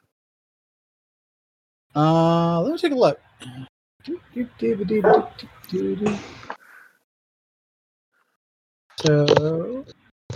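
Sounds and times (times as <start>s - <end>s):
speech: 2.0s - 6.5s, 9.0s - 10.0s
puppy barking and yipping: 5.0s - 5.4s.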